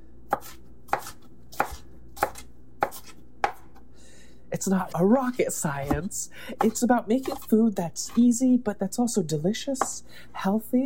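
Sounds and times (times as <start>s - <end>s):
knife chopping food: 0.3s - 3.8s, 4.8s - 8.3s
speech: 4.5s - 10.8s.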